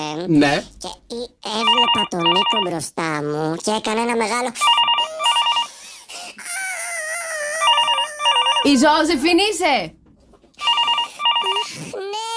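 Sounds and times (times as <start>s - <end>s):
speech: 0.0s - 4.9s, 8.6s - 10.0s
telephone ringing: 1.6s - 2.7s, 4.6s - 5.7s, 7.6s - 9.1s, 10.6s - 11.8s.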